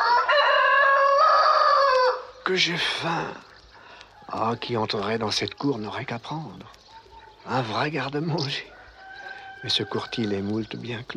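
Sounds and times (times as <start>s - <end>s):
rooster crowing cock-a-doodle-doo: 0.0s - 2.3s, 8.5s - 10.6s
speech: 2.5s - 3.5s, 4.3s - 6.8s, 7.4s - 8.7s, 9.6s - 11.1s.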